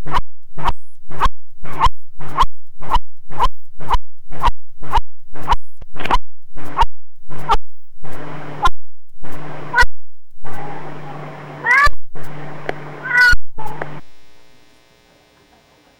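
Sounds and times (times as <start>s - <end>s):
steady low electrical hum: 0.0s - 15.9s
cat making bark-like yelps: 10.6s - 12.0s, 13.0s - 13.9s.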